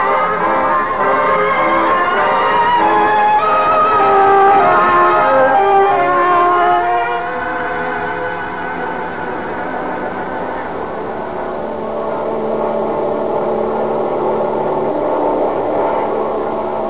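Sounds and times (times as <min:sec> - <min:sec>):
airplane engines warming up: 0:00.0 - 0:16.8.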